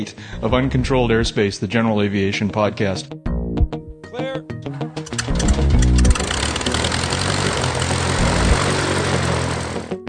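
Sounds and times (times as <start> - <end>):
speech: 0.0 - 3.3
sharp clicks: 5.0 - 8.1
propeller airplane engine droning: 5.1 - 10.0.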